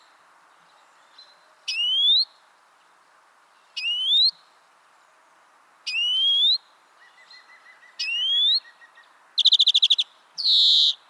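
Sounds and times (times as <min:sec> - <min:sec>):
European greenfinch Chloris chloris rising whistled calls: 0:01.1 - 0:02.3, 0:03.8 - 0:04.4, 0:05.9 - 0:11.0.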